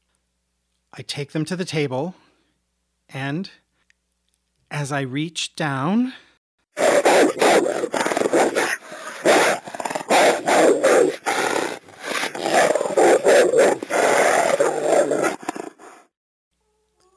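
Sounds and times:
speech: 0.9s - 2.2s, 3.1s - 3.6s, 4.7s - 6.3s, 7.4s - 11.4s
wolves growling and snarling: 6.8s - 16.0s.

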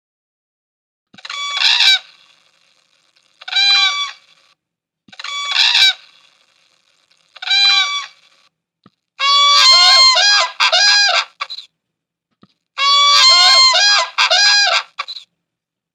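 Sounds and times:
whooping crane bugling calls: 1.2s - 2.2s, 3.4s - 4.4s, 5.2s - 6.4s, 7.4s - 8.4s, 9.2s - 11.6s, 12.8s - 15.2s.

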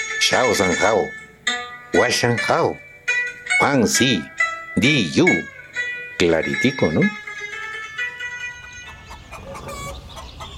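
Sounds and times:
speech: 0.2s - 1.2s, 1.9s - 2.8s, 3.6s - 5.5s, 6.2s - 7.2s
several farm fowl clucking: 8.8s - 10.5s.

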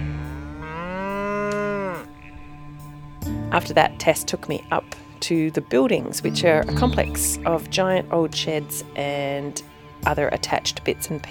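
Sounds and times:
cow mooing while walked through muddy fields after milking: 0.0s - 3.2s
speech: 3.5s - 11.2s.

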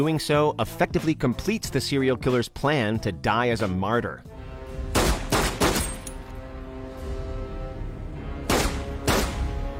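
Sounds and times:
speech: 0.0s - 4.4s
gunshots in a film scene: 4.9s - 6.1s, 8.4s - 9.6s.

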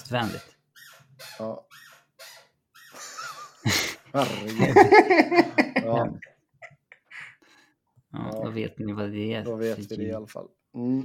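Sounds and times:
office chair squeaking as someone moves: 0.0s - 3.0s
speech: 0.1s - 0.5s, 1.4s - 1.8s, 3.6s - 6.3s, 8.1s - 11.0s
laughter: 3.0s - 7.4s.

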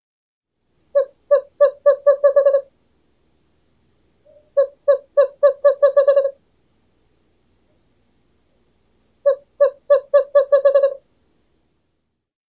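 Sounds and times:
Western screech owl calling in bouncing-ball series of low whistles: 1.0s - 2.7s, 4.3s - 6.4s, 9.2s - 11.0s.

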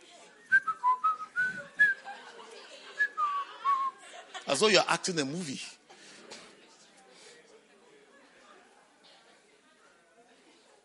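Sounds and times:
person whistling a casual wandering tune: 0.5s - 2.0s, 3.0s - 4.0s
laughter: 1.3s - 5.0s
speech: 4.5s - 5.8s.

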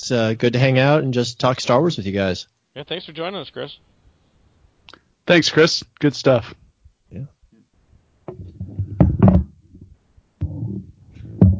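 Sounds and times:
speech: 0.0s - 3.9s, 4.9s - 7.4s
clattering knocks and bumps: 8.2s - 11.5s
heavy thud of someone falling off a chair: 8.3s - 11.5s
rumbling scrapes: 8.3s - 11.5s.

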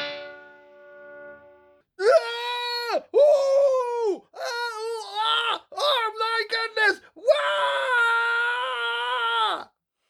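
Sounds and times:
person screaming in high-pitched wails: 2.0s - 9.7s.

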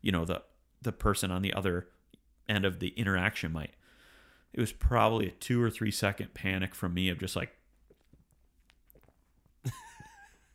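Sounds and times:
speech: 0.0s - 3.8s, 4.5s - 7.6s, 9.6s - 9.9s
wet mouth noises while eating or drinking: 7.7s - 9.6s
person gulping and swallowing while eating or drinking: 7.7s - 9.7s.

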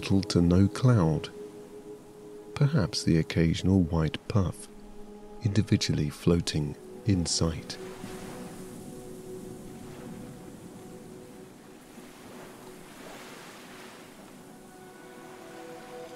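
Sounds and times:
speech: 0.0s - 1.4s, 2.6s - 4.7s, 5.4s - 8.0s
light wind: 0.0s - 16.1s
gentle ripples on a calm sea lapping against a ship: 7.8s - 14.5s.

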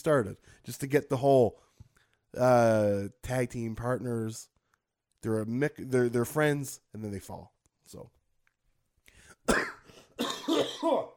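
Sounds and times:
speech: 0.0s - 1.7s, 2.3s - 4.5s, 5.2s - 8.2s, 9.5s - 9.7s, 10.5s - 11.1s
phlegmy coughing: 9.4s - 11.1s
raspy throat clearing: 9.5s - 11.1s.

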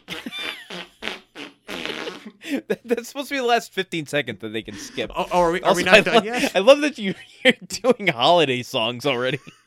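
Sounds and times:
person blowing raspberry-style fart imitations: 0.0s - 2.4s
speech: 2.5s - 9.6s
laughter: 4.7s - 8.4s.

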